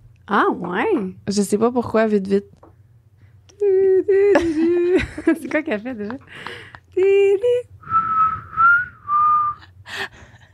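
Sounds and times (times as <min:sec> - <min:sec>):
speech: 0:00.3 - 0:02.7, 0:03.6 - 0:07.8
person whistling a short tune: 0:07.8 - 0:09.7.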